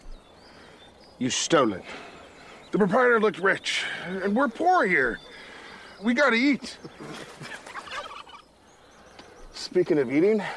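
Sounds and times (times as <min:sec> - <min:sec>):
quiet outdoor ambience: 0:00.0 - 0:10.5
speech: 0:01.2 - 0:02.1, 0:02.7 - 0:05.3, 0:06.0 - 0:07.6, 0:09.7 - 0:10.5
wild turkey gobbling: 0:02.4 - 0:08.6.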